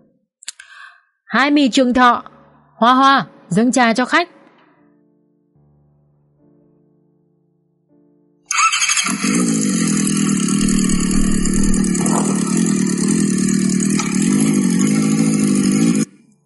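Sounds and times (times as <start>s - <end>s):
speech: 1.3s - 4.4s
engines of a motorcycle convoy pulling up and stopping: 9.2s - 16.1s.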